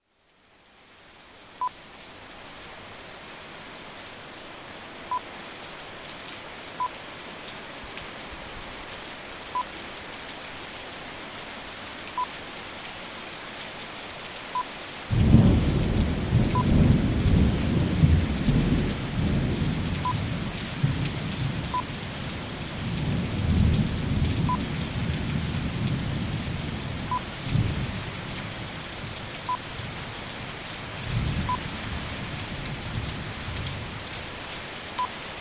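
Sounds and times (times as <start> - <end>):
heavy rain: 0.1 - 35.4
thunder: 15.1 - 20.2.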